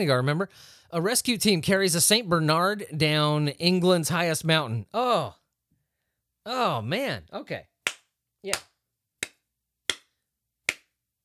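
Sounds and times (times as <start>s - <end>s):
speech: 0.0s - 5.4s, 6.4s - 7.7s, 8.4s - 8.7s
slow deliberate hand claps: 7.9s - 10.1s, 10.7s - 10.9s.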